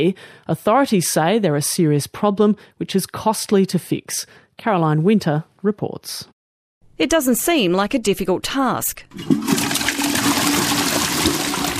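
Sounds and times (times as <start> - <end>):
speech: 0.0 - 6.4, 7.0 - 9.6
toilet flushing: 9.1 - 11.7.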